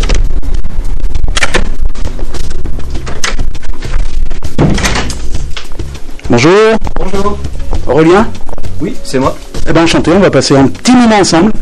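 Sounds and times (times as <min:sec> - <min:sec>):
shop door thumps and clatter: 0:01.3 - 0:05.6
speech: 0:06.3 - 0:11.5.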